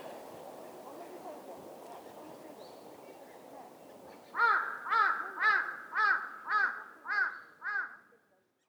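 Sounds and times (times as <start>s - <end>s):
crow cawing hoarsely: 4.4s - 8.1s.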